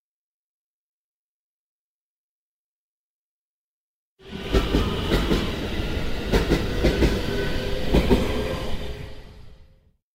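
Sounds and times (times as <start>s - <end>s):
moving commuter train rumbling: 4.2s - 9.9s
moving commuter train wheels clickety-clack on the rails: 4.3s - 8.8s.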